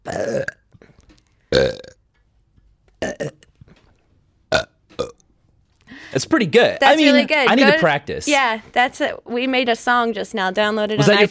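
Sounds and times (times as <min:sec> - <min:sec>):
speech: 0:00.0 - 0:00.6, 0:06.2 - 0:11.2
person burping deliberately: 0:00.0 - 0:02.0, 0:03.0 - 0:03.5, 0:04.5 - 0:05.2.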